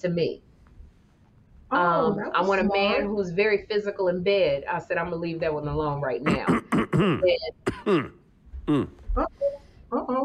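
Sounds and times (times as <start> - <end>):
speech: 0.0 - 0.5, 1.7 - 10.2
man clearing phlegm from his throat: 6.3 - 9.1.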